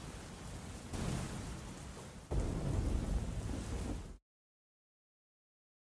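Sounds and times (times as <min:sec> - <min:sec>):
heavy rain: 0:00.0 - 0:04.2
deep thunder rumbles: 0:01.0 - 0:04.2.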